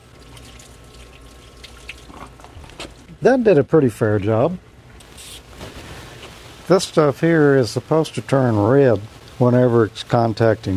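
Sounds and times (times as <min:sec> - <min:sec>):
water pouring from a jug onto a surface to rinse it at a transmitter site in the woods: 0:00.0 - 0:03.1
speech: 0:03.2 - 0:04.7, 0:06.7 - 0:10.7.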